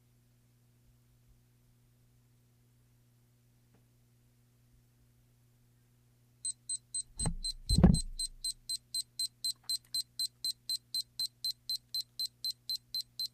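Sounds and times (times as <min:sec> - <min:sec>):
digital timer alarm beeping: 0:06.4 - 0:13.3
low handling thumps: 0:07.2 - 0:08.4.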